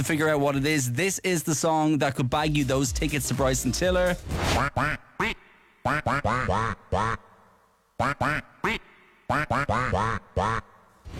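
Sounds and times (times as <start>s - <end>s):
speech: 0.0s - 7.2s, 8.0s - 11.1s
person quacking a song melody like a duck into a microphone: 4.6s - 10.9s.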